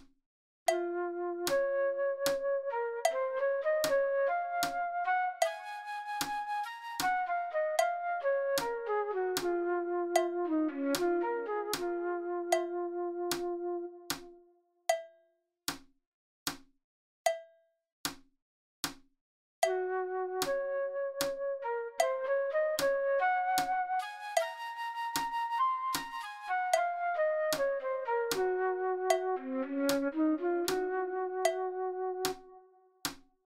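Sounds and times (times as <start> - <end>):
fast flute playing: 0.8 - 14.2, 19.7 - 32.5.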